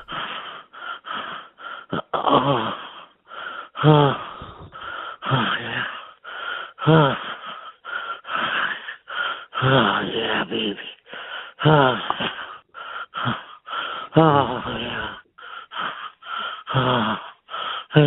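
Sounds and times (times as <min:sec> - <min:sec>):
light wheezing breaths: 0:00.0 - 0:10.0, 0:10.9 - 0:18.0
speech: 0:02.3 - 0:02.8, 0:03.8 - 0:04.2
moan-like voiced breaths: 0:03.9 - 0:05.0, 0:14.2 - 0:15.2.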